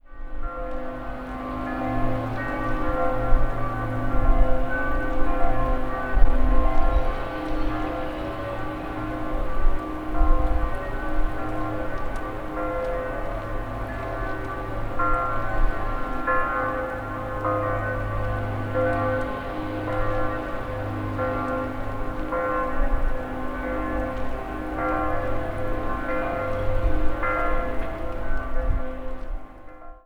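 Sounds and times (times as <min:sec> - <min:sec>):
church bells ringing: 0:00.0 - 0:30.0.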